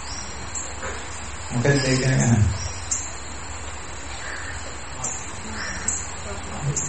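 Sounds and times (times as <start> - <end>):
noisy background: 0.0 - 6.8
speech: 1.5 - 2.6
crow cawing: 4.2 - 4.8, 5.5 - 6.1.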